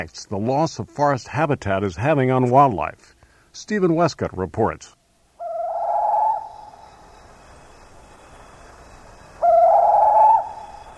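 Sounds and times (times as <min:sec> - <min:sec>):
speech: 0:00.0 - 0:05.0
faint steady hiss: 0:00.0 - 0:10.9
bird calling in an Indonesian forest: 0:05.4 - 0:10.9.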